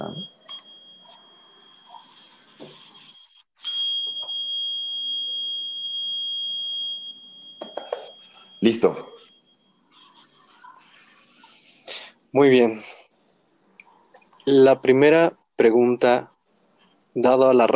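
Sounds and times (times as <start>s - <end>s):
tuning fork ringing with a high pure tone: 0.0s - 11.6s
speech: 8.6s - 9.1s, 12.4s - 13.0s, 14.5s - 16.3s, 17.2s - 17.7s.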